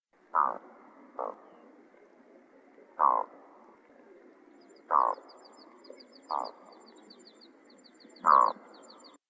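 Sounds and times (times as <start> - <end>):
loon calling: 0.3 - 1.6, 3.0 - 3.3, 4.9 - 5.5, 6.3 - 6.7, 8.2 - 8.7.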